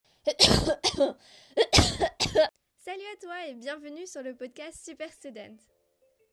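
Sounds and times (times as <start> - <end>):
harsh coughs: 0.3 - 2.5
speech: 0.3 - 5.8.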